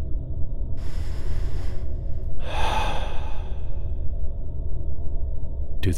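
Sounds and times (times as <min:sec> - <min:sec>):
low steady background: 0:00.0 - 0:05.9
deep breath in through the nose, out through the mouth: 0:00.8 - 0:04.2.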